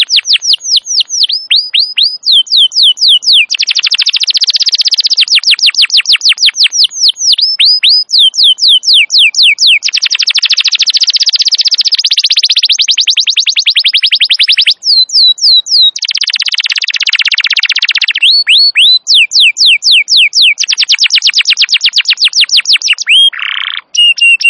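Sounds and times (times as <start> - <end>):
wild Atlantic canary singing in tours: 0.0 - 24.4.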